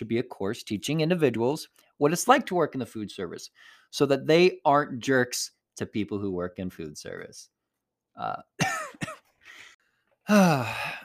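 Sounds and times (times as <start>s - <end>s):
speech: 0.0s - 7.6s, 8.2s - 8.7s, 10.3s - 11.0s
person coughing and clearing their throat: 8.6s - 11.0s.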